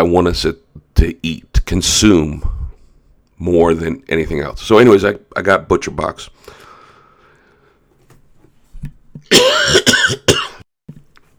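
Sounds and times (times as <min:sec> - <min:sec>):
speech: 0:00.0 - 0:02.5, 0:03.4 - 0:06.6
person coughing: 0:09.2 - 0:10.6
throat clearing: 0:09.2 - 0:10.6.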